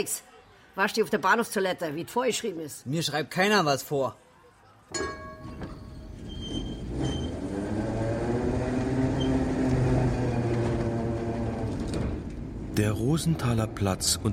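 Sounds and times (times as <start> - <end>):
speech: 0.0 - 4.2, 4.9 - 5.2, 12.8 - 14.3
underground train in Berlin running toward Stettiner Bahnhof: 5.1 - 14.3.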